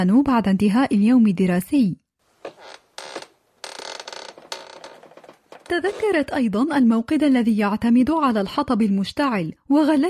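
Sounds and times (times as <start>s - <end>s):
speech: 0.0s - 2.6s, 5.7s - 10.0s
wooden floorboards creaking in a music room: 2.4s - 6.4s.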